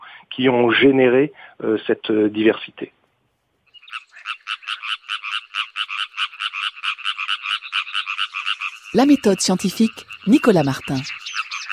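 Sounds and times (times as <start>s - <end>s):
speech: 0.4s - 3.0s, 9.0s - 11.2s
frog croaking in raspy pulses: 3.7s - 11.7s.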